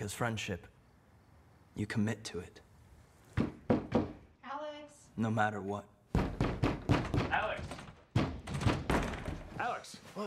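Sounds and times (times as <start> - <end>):
speech: 0.0 - 0.8, 1.8 - 2.7, 5.2 - 5.9, 9.8 - 10.2
fists pounding on a door: 3.4 - 4.2, 6.1 - 9.5.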